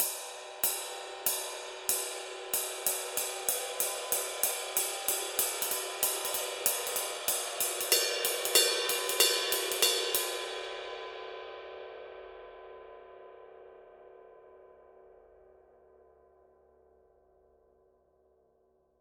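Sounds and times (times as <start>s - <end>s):
dark dry ride cymbal: 0.0s - 17.5s.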